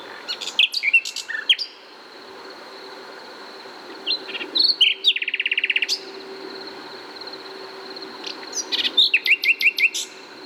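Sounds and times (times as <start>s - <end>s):
common nightingale Luscinia megarhynchos song: 0.0s - 1.9s, 4.0s - 6.4s, 7.7s - 10.4s.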